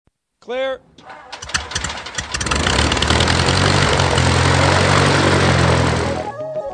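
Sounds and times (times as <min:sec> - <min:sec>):
speech: 0:00.4 - 0:01.4
clattering mechanical noises: 0:01.0 - 0:06.1
propeller airplane engine roaring: 0:01.3 - 0:06.3.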